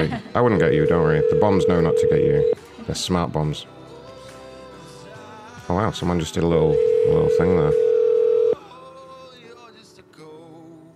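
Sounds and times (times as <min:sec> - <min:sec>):
speech: 0:00.0 - 0:03.8, 0:05.7 - 0:07.9
electronic telephone ringing tone: 0:00.6 - 0:02.6, 0:06.7 - 0:08.6.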